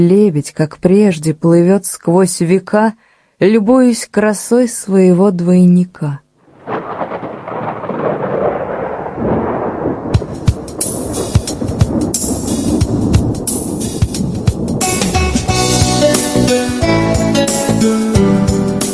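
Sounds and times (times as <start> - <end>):
speech: 0.0 - 6.2
heavy rain with crackling drops: 6.4 - 18.1
deep rolling thunder of a passing storm: 6.4 - 18.8.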